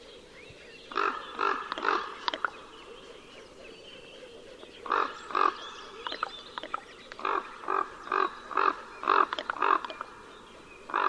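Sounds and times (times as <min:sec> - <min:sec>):
common raven brief clicks: 0:00.9 - 0:02.6, 0:04.9 - 0:10.3
common raven giving rough croaking caws: 0:00.9 - 0:11.0.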